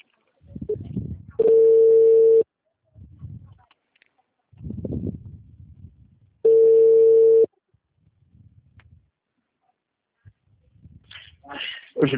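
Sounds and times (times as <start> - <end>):
low noises: 0.0 - 12.1
long telephone beeps after a dropped call: 1.4 - 2.4, 6.4 - 7.5.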